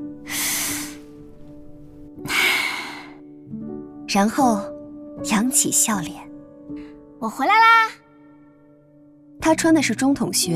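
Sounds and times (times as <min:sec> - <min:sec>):
person taking a deep breath: 0:00.2 - 0:01.1, 0:02.2 - 0:03.3
speech: 0:04.1 - 0:08.0, 0:09.4 - 0:10.5.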